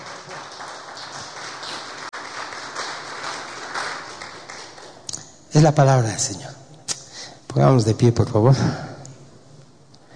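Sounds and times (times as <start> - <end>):
audience applauding after a Bible reading: 0.0 - 5.1
speech: 5.5 - 6.6, 7.6 - 8.9.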